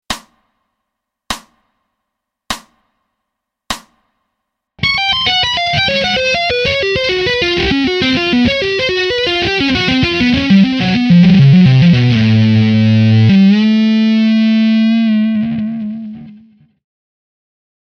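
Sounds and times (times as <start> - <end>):
slow atonal tapping lick: 5.1 - 16.0.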